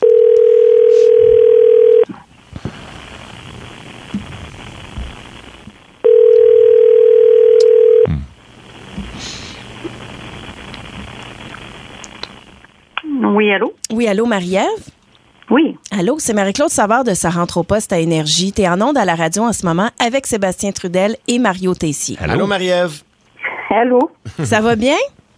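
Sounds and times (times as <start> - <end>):
telephone tone while a call is being placed: 0.0 - 2.1, 6.0 - 8.1
faint hiss: 0.0 - 25.3
speech: 13.6 - 14.9, 15.5 - 23.1, 23.7 - 25.2.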